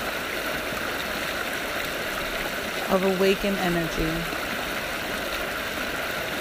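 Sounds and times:
flowing stream water rushing: 0:00.0 - 0:06.3
speech: 0:02.9 - 0:04.4.

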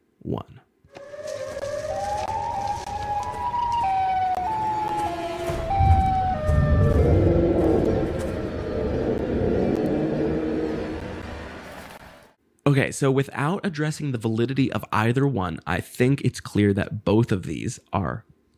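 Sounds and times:
speech: 0:00.2 - 0:00.6, 0:12.7 - 0:18.3
eerie siren-like wail of a siren head creature: 0:00.9 - 0:12.3
heavy growling low rumble: 0:04.8 - 0:12.1.

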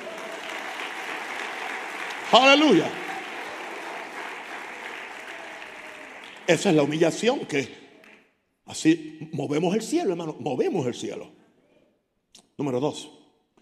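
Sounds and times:
congregation applauding: 0:00.0 - 0:08.3
speech: 0:02.3 - 0:03.0, 0:06.5 - 0:07.8, 0:08.7 - 0:11.4, 0:12.6 - 0:13.2.

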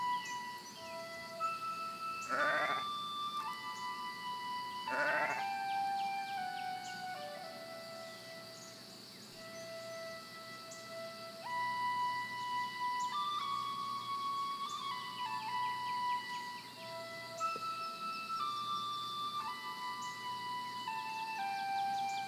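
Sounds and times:
faint birdsong: 0:00.0 - 0:22.2
steady outdoor ambience: 0:00.0 - 0:22.2
sheep bleating in an open field: 0:02.3 - 0:02.9, 0:04.9 - 0:05.4.

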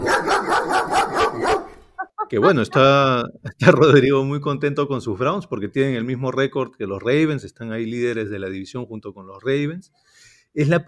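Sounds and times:
dog barking: 0:00.0 - 0:02.6
speech: 0:02.3 - 0:10.8.

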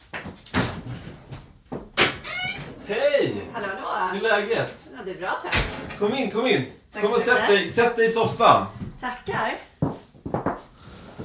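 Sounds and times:
front door rattle: 0:00.5 - 0:03.2, 0:05.5 - 0:06.3
speech: 0:02.9 - 0:09.7.

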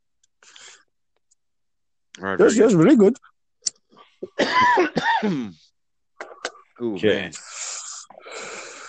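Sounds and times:
speech: 0:02.2 - 0:03.3, 0:04.3 - 0:05.7, 0:06.8 - 0:07.5
person coughing in a drawn-out fit: 0:04.2 - 0:05.6
long breathy wheezes: 0:07.4 - 0:08.8.

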